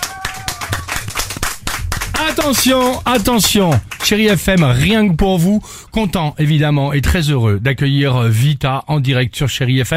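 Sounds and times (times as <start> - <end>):
live studio audience clapping: 0.0 - 5.0
speech: 2.2 - 9.9.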